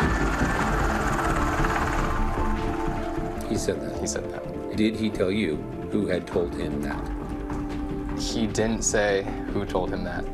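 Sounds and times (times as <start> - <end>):
helicopter flying with rotor chop and engine roar: 0.0 - 4.7
speech: 3.6 - 7.2, 8.2 - 10.3.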